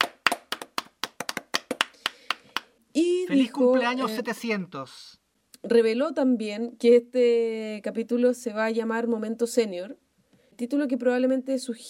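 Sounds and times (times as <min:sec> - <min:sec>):
hands clapping: 0:00.0 - 0:02.8
speech: 0:03.0 - 0:10.0, 0:10.6 - 0:11.8.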